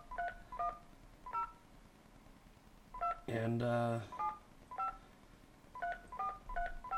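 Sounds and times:
touch-tone keypad beeps from a landline being dialed: 0.1 - 1.5, 4.2 - 5.0, 5.8 - 6.9
speech: 3.3 - 4.2.

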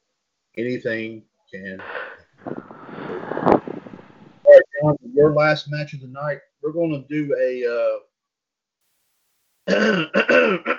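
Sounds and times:
speech: 0.6 - 3.3, 4.8 - 8.1, 9.7 - 10.7
person clearing throat: 9.7 - 10.7.

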